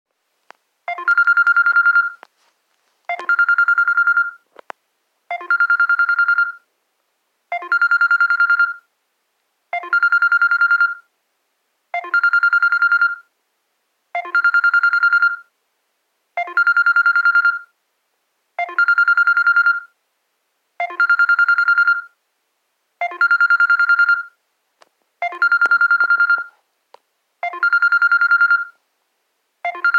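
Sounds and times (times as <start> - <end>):
Samsung phone basic ringtone: 0.9 - 2.2, 3.1 - 4.4, 5.3 - 6.6, 7.5 - 8.9, 9.7 - 11.1, 12.0 - 13.3, 14.2 - 15.5, 16.4 - 17.7, 18.6 - 19.9, 20.8 - 22.2, 23.0 - 24.4, 25.2 - 26.6, 27.4 - 28.8, 29.6 - 29.9.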